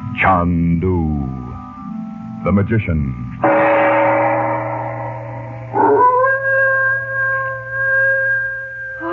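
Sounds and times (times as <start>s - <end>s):
speech: 0.2s - 1.5s, 2.4s - 3.9s
low hum: 3.1s - 9.1s
dog howling in a dark village: 5.7s - 9.1s.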